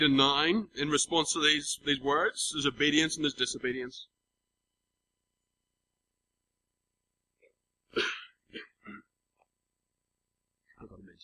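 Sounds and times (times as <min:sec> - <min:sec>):
speech: 0:00.0 - 0:04.2, 0:07.9 - 0:09.0
harsh coughs: 0:07.9 - 0:09.2.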